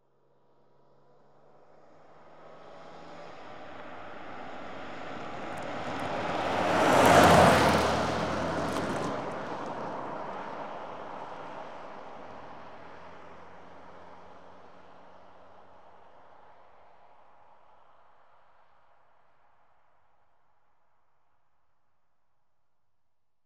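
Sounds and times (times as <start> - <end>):
cars passing fast left to right: 4.4 - 11.6.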